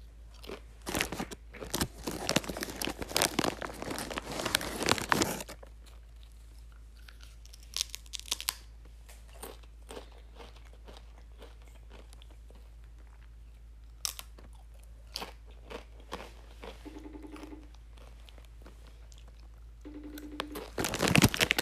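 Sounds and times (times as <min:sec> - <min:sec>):
spicy nacho tortilla chips crunching while being eaten: 0:00.3 - 0:19.7, 0:20.3 - 0:21.6.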